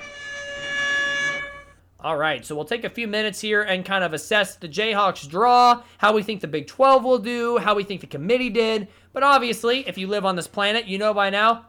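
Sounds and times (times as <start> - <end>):
loud multi-tone air horn blast: 0.0 - 1.9
speech: 2.0 - 11.6.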